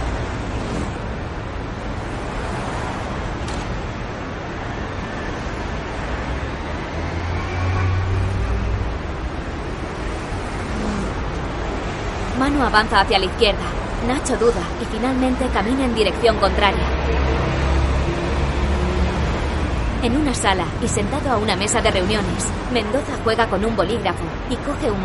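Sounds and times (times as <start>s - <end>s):
dense street traffic road noise from passing vehicles: 0.0s - 25.0s
speech: 12.6s - 17.8s, 20.0s - 25.0s.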